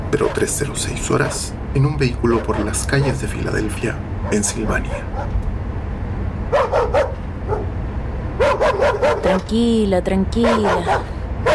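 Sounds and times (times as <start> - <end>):
low rumble: 0.0 - 11.5
speech: 0.1 - 5.5, 9.3 - 11.5
dog barking: 0.2 - 1.5, 2.3 - 3.2, 4.2 - 5.4, 6.5 - 7.7, 8.4 - 9.4, 10.4 - 11.5.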